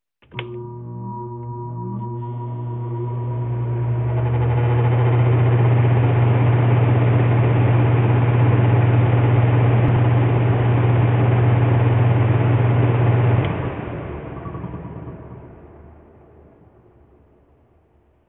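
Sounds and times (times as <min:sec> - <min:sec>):
air conditioner cycle: 0:00.3 - 0:14.6.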